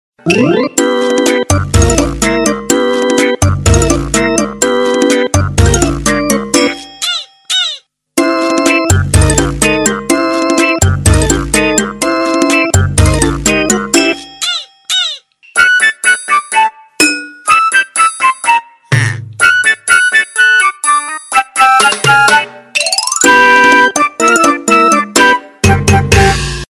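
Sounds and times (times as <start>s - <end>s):
tango remix ringtone: 0.2s - 26.4s.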